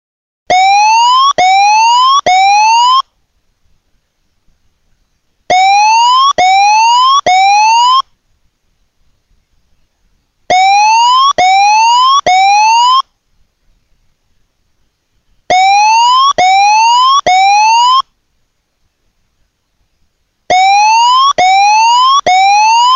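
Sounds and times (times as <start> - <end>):
tsunami warning siren with upward-sweeping electronic tones: 0.5 - 3.0, 5.5 - 8.0, 10.5 - 13.0, 15.5 - 18.0, 20.5 - 22.9.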